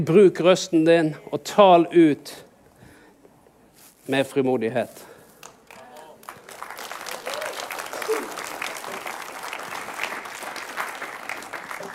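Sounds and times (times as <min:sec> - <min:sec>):
speech: 0:00.0 - 0:02.5, 0:04.1 - 0:05.1
audience applauding warmly: 0:05.4 - 0:11.9.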